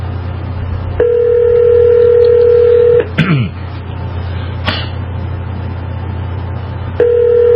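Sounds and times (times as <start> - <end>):
low constant hum: 0.0 - 7.5
phone line ringback tone: 1.0 - 3.0, 7.0 - 7.5.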